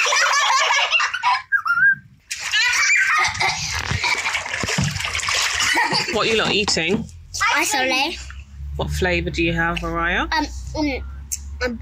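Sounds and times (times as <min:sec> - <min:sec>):
children giggling and squealing: 0:00.0 - 0:04.5, 0:05.4 - 0:06.2
water splashing in a swimming pool: 0:02.2 - 0:08.5
speech: 0:06.2 - 0:11.8.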